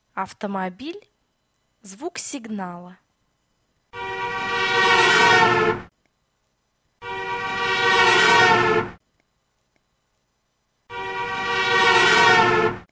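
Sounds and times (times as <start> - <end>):
car horn: 3.9 - 5.9, 7.0 - 9.0, 10.9 - 12.9.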